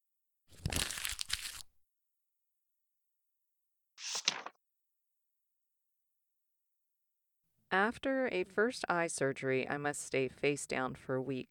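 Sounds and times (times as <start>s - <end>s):
paper crumpled into a ball by hand: 0.5s - 1.7s, 4.0s - 4.5s
speech: 7.7s - 11.4s.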